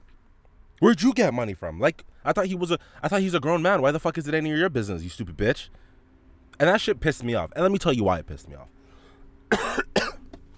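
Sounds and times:
speech: 0.8 - 5.9, 6.6 - 8.8
person coughing harshly: 9.5 - 10.3.

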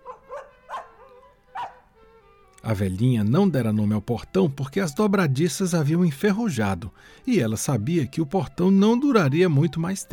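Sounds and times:
small dog barking: 0.0 - 1.8
speech: 2.7 - 10.1.

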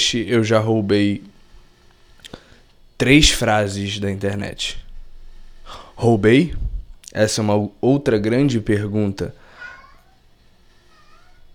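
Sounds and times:
faint hiss: 0.0 - 11.5
speech: 0.1 - 1.3, 3.0 - 4.8, 5.7 - 9.4
cat meowing: 9.5 - 10.3, 10.9 - 11.5.

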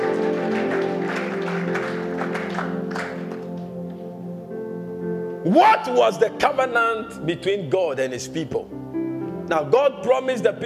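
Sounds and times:
congregation clapping: 0.0 - 4.2
sustained humming musical chord: 0.0 - 9.8
speech: 5.4 - 8.8, 9.5 - 10.6.

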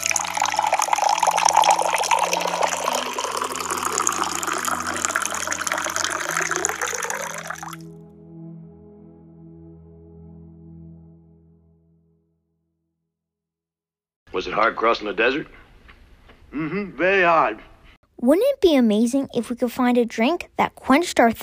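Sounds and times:
cold water pouring into a glass: 0.0 - 7.8
speech: 14.4 - 15.6, 16.5 - 21.4.

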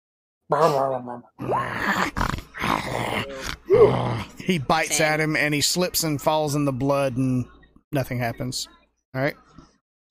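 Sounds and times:
speech: 0.5 - 2.3, 2.9 - 10.0
person growling and groaning imitating an angry animal: 1.4 - 4.5.

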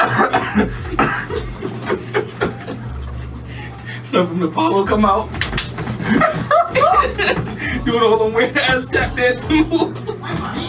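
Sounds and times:
person coughing harshly: 0.0 - 1.7
laughter: 0.0 - 3.9, 5.9 - 10.6
speech: 4.2 - 5.5, 6.1 - 10.0.

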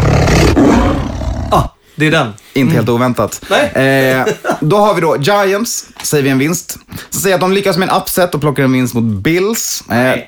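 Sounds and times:
person imitating a sabre-toothed tiger roar with a rising snarl: 0.0 - 1.8
speech: 1.5 - 10.2.

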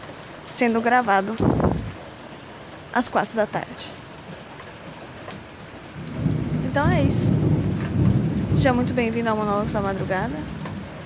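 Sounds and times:
steady rain: 0.0 - 11.0
speech: 0.6 - 1.6, 2.9 - 4.0, 6.8 - 7.6, 8.6 - 10.6
low rumble of thunder: 1.4 - 2.0, 5.8 - 11.0.

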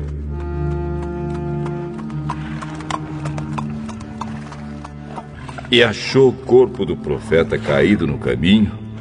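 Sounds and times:
donkey hooves clip-clopping at a walking pace: 0.0 - 6.8
low continuous droning background: 0.0 - 8.9
speech: 5.7 - 8.8.

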